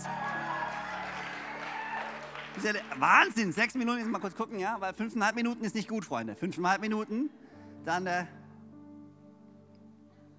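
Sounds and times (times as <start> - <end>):
audience applause and cheering with whoops and voices: 0.0 - 4.4
speech: 2.6 - 8.4.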